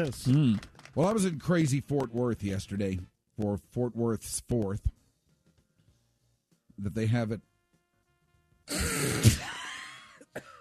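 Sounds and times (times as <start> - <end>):
speech: 0.0 - 5.0, 6.8 - 7.5, 8.7 - 9.5
man coughing: 8.7 - 10.5.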